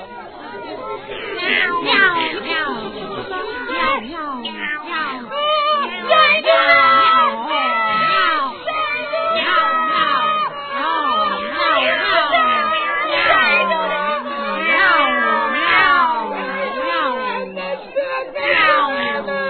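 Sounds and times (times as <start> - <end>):
laughter: 0.0 - 19.4
yowling cat-like cries: 0.0 - 19.4
hen's chicks screaming in fear: 1.1 - 19.4.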